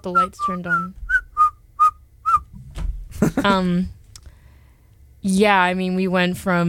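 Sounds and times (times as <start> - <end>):
speech: 0.0 - 1.0, 3.4 - 4.0, 5.2 - 6.6
person whistling a short series of clear notes: 0.1 - 2.5.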